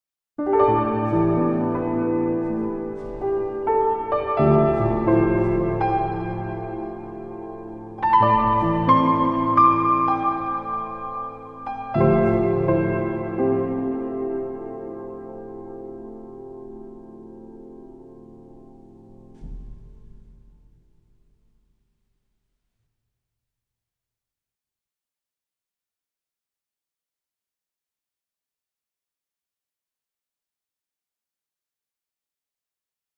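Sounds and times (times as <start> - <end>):
piano through EMT250 plate reverb: 0.4 - 21.8.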